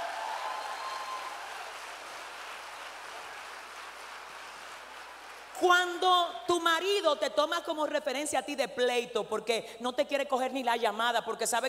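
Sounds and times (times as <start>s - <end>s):
large crowd applauding: 0.0s - 5.6s
speech: 5.6s - 11.6s.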